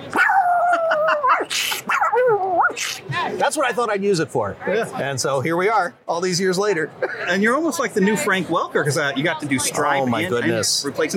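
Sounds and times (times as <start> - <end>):
person imitating a pug barking: 0.1 - 3.0
laughter: 0.4 - 3.4, 7.0 - 7.6
speech: 3.5 - 11.1.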